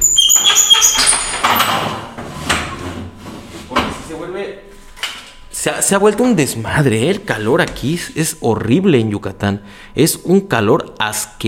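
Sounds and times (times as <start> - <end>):
door being opened with clattering, scraping knocks and a sliding rattle: 0.0 - 3.0
speech: 4.2 - 4.7, 5.6 - 11.4.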